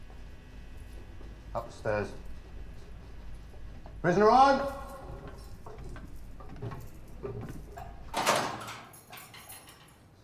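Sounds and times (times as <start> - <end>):
speech: 1.5 - 2.3, 4.0 - 4.8
prison door latch clanking: 5.1 - 10.0
heavy metal prison door lock clicks and rattles: 6.4 - 10.0.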